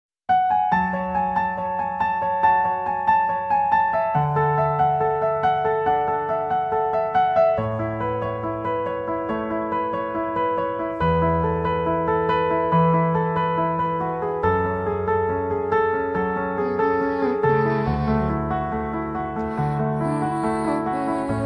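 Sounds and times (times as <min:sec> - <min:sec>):
love piano music: 0:00.3 - 0:21.4.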